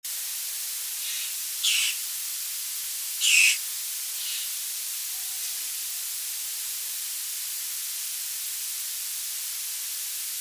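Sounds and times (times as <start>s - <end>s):
Apostlebird calling in NSW: 1.0s - 2.0s, 3.2s - 3.6s, 4.2s - 4.6s.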